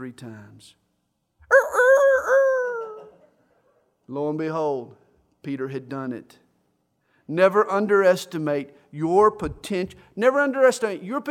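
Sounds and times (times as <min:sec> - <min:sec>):
speech: 0:00.0 - 0:00.8, 0:04.1 - 0:06.4, 0:07.3 - 0:11.3
rooster crowing: 0:01.5 - 0:03.2.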